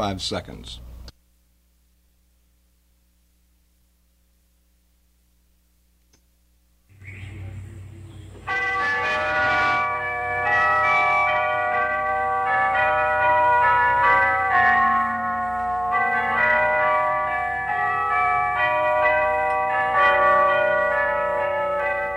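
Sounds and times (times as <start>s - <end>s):
speech: 0.0s - 0.9s
large tubular bells ringing: 6.9s - 22.1s.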